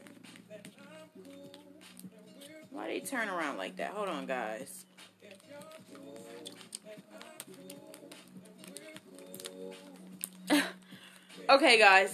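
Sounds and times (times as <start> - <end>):
speech: 2.7 - 4.8, 11.5 - 12.1
tarot cards being shuffled: 5.4 - 10.4.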